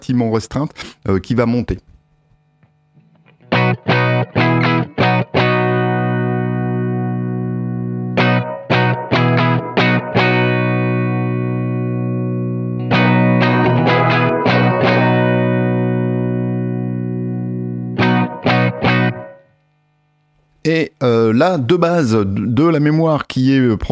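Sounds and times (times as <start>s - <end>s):
speech: 0.0s - 1.9s, 20.7s - 23.9s
distorted electric guitar chords strummed through an amp with small-room reverb: 2.0s - 20.6s.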